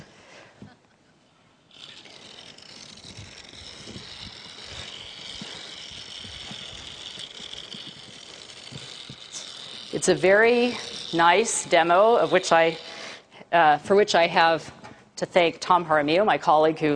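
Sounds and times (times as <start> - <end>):
faint mechanical rattle: 1.6 - 13.0
toy fuel cell car electric motors whirring: 1.6 - 14.4
speech: 10.0 - 12.9, 13.5 - 16.9.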